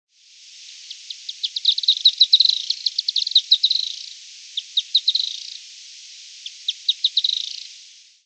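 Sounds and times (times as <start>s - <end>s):
Firewood-gatherer Anumbius annumbi song of sharp high chips: 0.4s - 8.2s.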